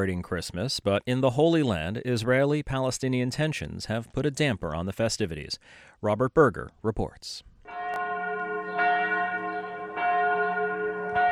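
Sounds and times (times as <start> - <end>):
speech: 0.0 - 7.5
church bells at the Church of the Nativity in Bethlehem ringing at Christmas: 7.7 - 11.2.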